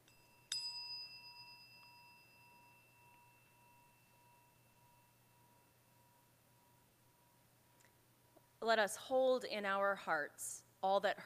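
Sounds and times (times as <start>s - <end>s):
meditation chime ringing: 0.0s - 7.4s
speech: 8.6s - 11.2s.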